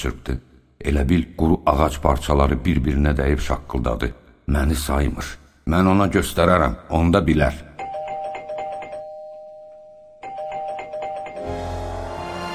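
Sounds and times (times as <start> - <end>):
speech: 0.0 - 7.7
electronic doorbell chime at a home's front door: 7.8 - 11.9.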